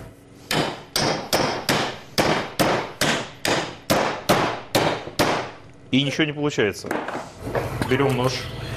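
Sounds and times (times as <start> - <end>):
hammer striking fish: 0.5 - 5.5
speech: 5.9 - 8.6.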